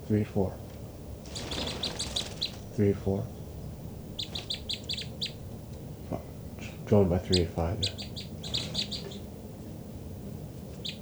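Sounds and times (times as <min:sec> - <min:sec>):
birds calling in quick runs of high thin chirps: 0:00.0 - 0:11.0
speech: 0:00.1 - 0:00.6, 0:02.8 - 0:03.4, 0:06.9 - 0:08.0.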